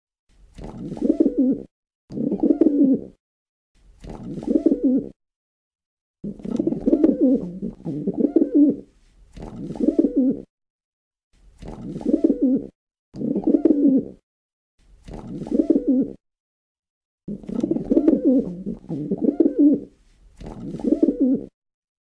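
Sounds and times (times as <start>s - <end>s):
pigeon cooing: 0.6s - 3.2s, 4.1s - 5.2s, 6.2s - 10.5s, 11.7s - 14.2s, 15.1s - 16.2s, 17.3s - 21.6s.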